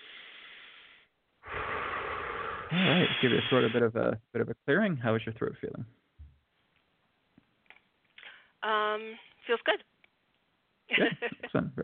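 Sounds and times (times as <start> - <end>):
quiet breath in and out: 0.0 - 3.8
speech: 2.7 - 6.0, 8.6 - 9.9, 10.9 - 11.8.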